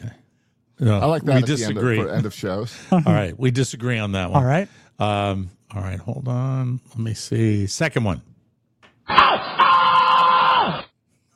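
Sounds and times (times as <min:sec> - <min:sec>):
speech: 0:00.8 - 0:08.3
comedian's loud raspy scream: 0:09.1 - 0:10.9.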